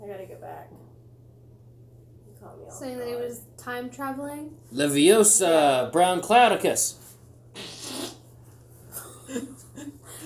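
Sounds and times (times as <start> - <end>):
low steady hum: 0.0 - 10.2
speech: 0.3 - 1.0, 2.4 - 7.0
breathy spluttering fart: 7.5 - 8.2.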